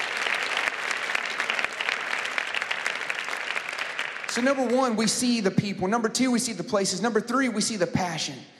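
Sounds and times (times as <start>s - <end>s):
crowd clapping: 0.0s - 5.4s
speech: 4.4s - 8.5s.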